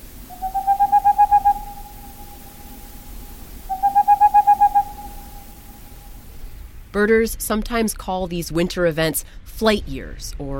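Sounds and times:
boreal owl rapid trill of hollow hoots: 0:00.3 - 0:06.2
speech: 0:07.0 - 0:10.5.

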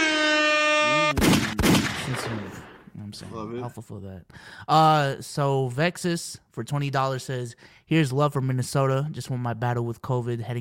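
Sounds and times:
air horn sound effect: 0:00.0 - 0:01.5
gunshot sound effects: 0:01.1 - 0:02.9
speech: 0:02.2 - 0:10.5.

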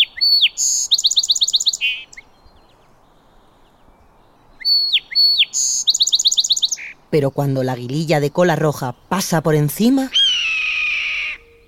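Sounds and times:
male song sparrows singing from a wooded thicket along a shore: 0:00.0 - 0:11.6
speech: 0:07.1 - 0:10.2.

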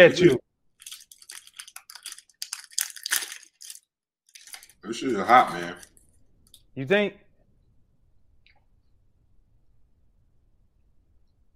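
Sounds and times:
speech: 0:00.0 - 0:00.4, 0:04.8 - 0:05.9, 0:06.8 - 0:07.2
crunchy chewing of food: 0:00.8 - 0:06.1.

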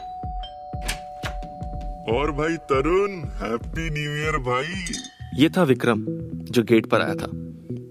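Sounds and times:
doorbell chiming with a sustained ringing tone: 0:00.0 - 0:03.1
rhythmic thuds: 0:00.0 - 0:06.4
speech: 0:02.1 - 0:07.6.

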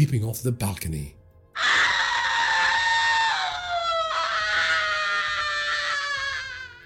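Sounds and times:
speech: 0:00.0 - 0:01.2
woman screaming: 0:01.6 - 0:06.8.

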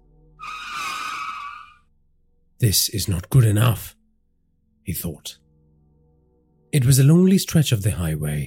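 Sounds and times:
car tires screeching as car brakes hard: 0:00.4 - 0:01.8
speech: 0:02.6 - 0:04.0, 0:04.9 - 0:05.4, 0:06.7 - 0:08.4.

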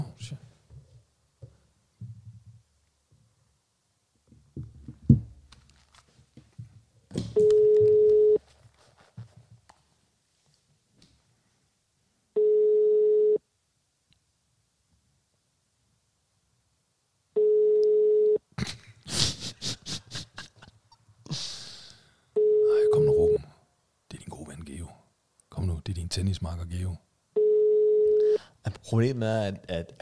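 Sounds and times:
outgoing phone call single-pitch ringing tone: 0:07.4 - 0:08.4, 0:12.4 - 0:13.4, 0:17.4 - 0:18.4, 0:22.4 - 0:23.4, 0:27.4 - 0:28.4
speech: 0:26.2 - 0:27.1, 0:28.9 - 0:30.0.

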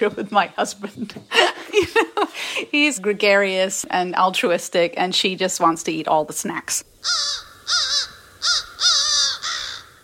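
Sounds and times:
speech: 0:00.0 - 0:08.0
laughter: 0:01.3 - 0:02.8
crow cawing: 0:07.0 - 0:10.0.

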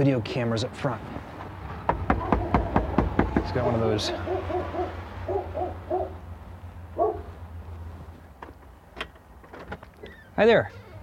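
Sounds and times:
speech: 0:00.0 - 0:01.3, 0:03.4 - 0:04.6, 0:10.4 - 0:10.8
dog barking behind a door: 0:02.2 - 0:02.9, 0:04.1 - 0:06.2, 0:07.0 - 0:07.4.

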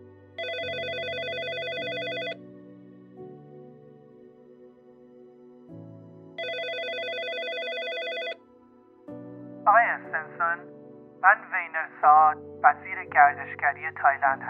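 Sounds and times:
soft music: 0:00.0 - 0:14.4
telephone ringing with bright buzzing electronic trilling: 0:00.4 - 0:02.4, 0:06.4 - 0:08.4
speech: 0:12.3 - 0:14.4.

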